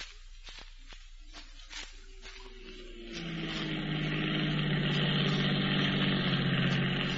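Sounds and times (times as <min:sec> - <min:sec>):
automobile engine idling: 0:02.3 - 0:07.1.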